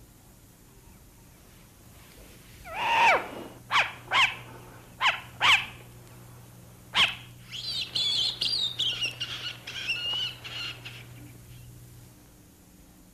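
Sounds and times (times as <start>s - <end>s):
short-eared owl sharp raspy calls: 2.6s - 5.8s, 6.9s - 11.7s.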